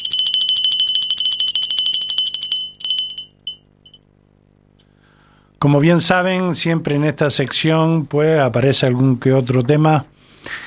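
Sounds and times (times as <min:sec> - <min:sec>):
small bell ringing: 0:00.0 - 0:04.0
speech: 0:05.6 - 0:10.6.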